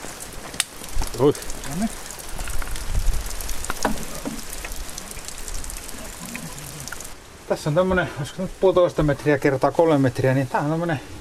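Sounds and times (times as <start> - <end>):
sharp drips of rain: 0.0 - 7.2
autumn rain pattering on a hard surface: 0.0 - 11.0
speech: 1.2 - 2.1, 7.5 - 11.2
faint voices murmuring: 5.8 - 7.1.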